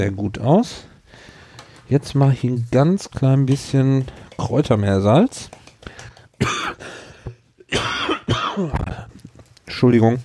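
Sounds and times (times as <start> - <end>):
speech: 0.0 - 0.9, 1.9 - 5.6, 9.8 - 10.2
throat-clearing rattle: 6.4 - 6.9, 7.7 - 9.2
person coughing: 6.4 - 9.1.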